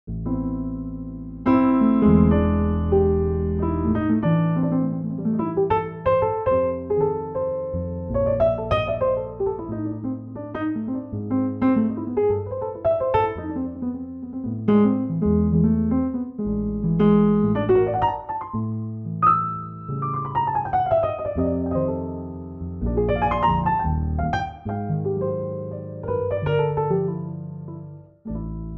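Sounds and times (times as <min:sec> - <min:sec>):
jazzy Bosendorfer 290 piano playing: 0:00.1 - 0:28.7.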